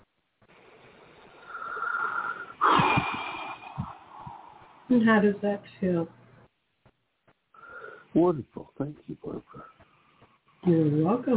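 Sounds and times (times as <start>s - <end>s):
person taking a deep breath during a letting-go exercise: 1.3s - 4.9s, 7.6s - 8.1s
speech: 4.9s - 6.2s, 8.2s - 9.7s, 10.6s - 11.3s.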